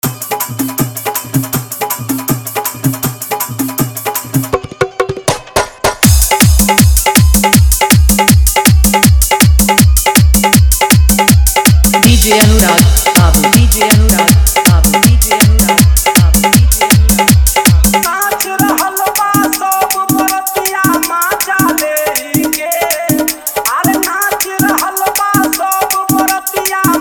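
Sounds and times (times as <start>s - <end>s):
Bhojpuri wedding dholak bass dance mix: 0.0s - 26.9s.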